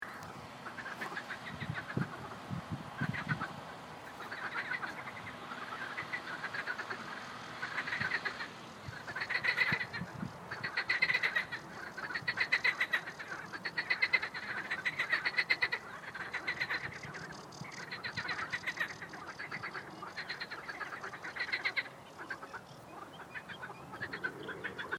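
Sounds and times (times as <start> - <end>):
marsh frogs: 0.1 - 2.4, 3.0 - 3.5, 4.1 - 24.9.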